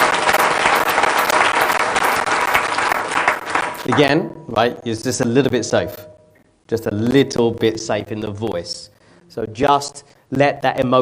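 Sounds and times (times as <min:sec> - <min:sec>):
audience applause: 0:00.0 - 0:04.1
speech: 0:04.0 - 0:06.1, 0:06.7 - 0:10.9.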